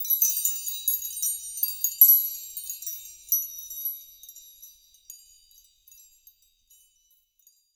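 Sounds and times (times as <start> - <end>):
wind chime keys texture: 0.0 - 7.7.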